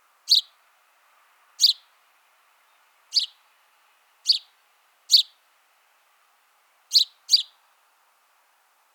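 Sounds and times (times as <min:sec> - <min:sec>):
house sparrow Passer domesticus calling with brief chirps: 0:00.3 - 0:00.6, 0:01.6 - 0:01.9, 0:02.6 - 0:03.4, 0:04.2 - 0:04.5, 0:05.1 - 0:05.4, 0:06.9 - 0:07.6.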